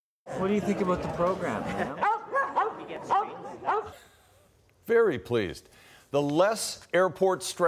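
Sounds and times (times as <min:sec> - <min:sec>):
speech: 0:00.4 - 0:02.1, 0:04.9 - 0:07.6
dog barking: 0:02.0 - 0:04.0.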